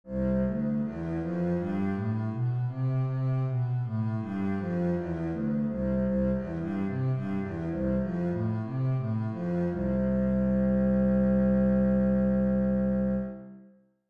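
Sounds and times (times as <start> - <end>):
bass playing C major scales: 0.1 - 13.6.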